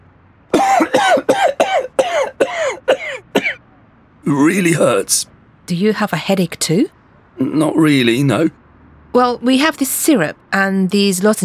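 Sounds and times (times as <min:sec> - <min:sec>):
man with a sore throat coughing: 0:00.6 - 0:03.6
speech: 0:04.3 - 0:11.4.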